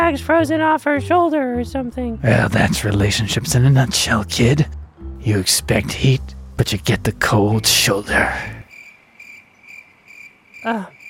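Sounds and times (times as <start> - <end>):
speech: 0.1 - 8.6, 10.6 - 11.0
crickets chirping: 7.5 - 11.0.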